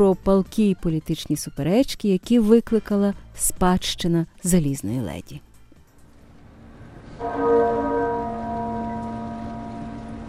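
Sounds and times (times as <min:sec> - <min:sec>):
speech: 0:00.0 - 0:05.5, 0:07.2 - 0:07.6
muffled church bell tolling at a funeral at a cathedral in London: 0:07.2 - 0:10.2.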